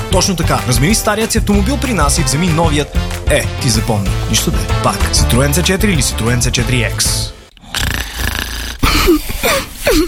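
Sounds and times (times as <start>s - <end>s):
speech: 0.1s - 7.9s
person snoring: 7.5s - 9.9s.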